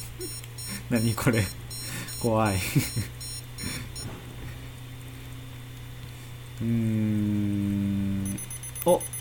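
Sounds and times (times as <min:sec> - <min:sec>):
steady low hum: 0:00.0 - 0:09.1
speech: 0:00.2 - 0:01.6, 0:02.2 - 0:03.8, 0:06.6 - 0:09.1
faint high electronic beeps from a device signalling voltage is ready: 0:00.2 - 0:04.1, 0:08.2 - 0:09.1
laughter: 0:02.6 - 0:03.2.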